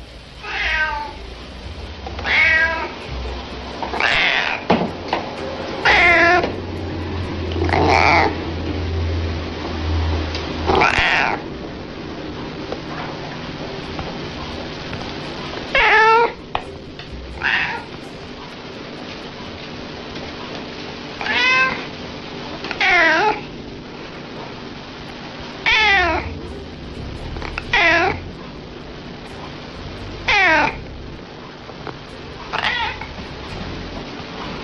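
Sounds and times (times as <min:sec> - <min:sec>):
cat purring: 0:00.0 - 0:21.9, 0:22.8 - 0:34.6
cat meowing: 0:00.4 - 0:01.3, 0:02.2 - 0:03.1, 0:03.9 - 0:04.7, 0:05.8 - 0:06.6, 0:07.6 - 0:08.4, 0:10.7 - 0:11.4, 0:15.7 - 0:16.4, 0:17.4 - 0:18.0, 0:21.2 - 0:21.9, 0:22.7 - 0:23.5, 0:25.6 - 0:26.5, 0:27.4 - 0:28.3, 0:30.2 - 0:31.0, 0:32.5 - 0:33.9.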